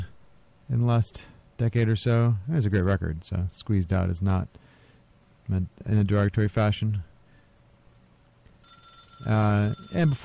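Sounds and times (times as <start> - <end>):
low steady room hum: 0.0 - 10.2
speech: 0.7 - 4.7, 5.5 - 7.1, 9.2 - 10.2
studio telephone ringing with warbling electronic trills: 8.6 - 10.2.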